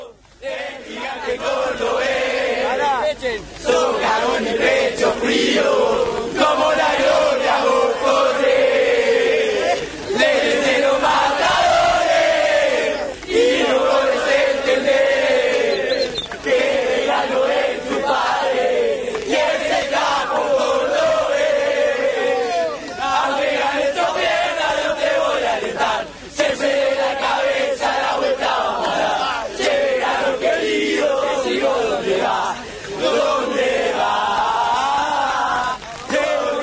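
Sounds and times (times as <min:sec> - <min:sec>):
large crowd of football supporters chanting in unison in a stadium: 0:00.0 - 0:36.6
speech: 0:01.3 - 0:02.0.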